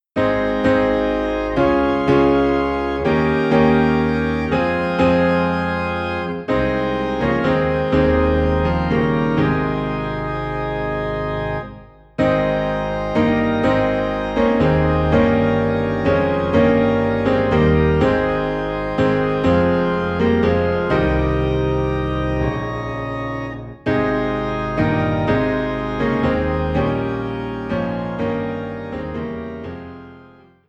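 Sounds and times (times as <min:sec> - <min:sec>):
low piano in A flat: 0:00.0 - 0:30.6
low organ in A flat: 0:00.2 - 0:30.6.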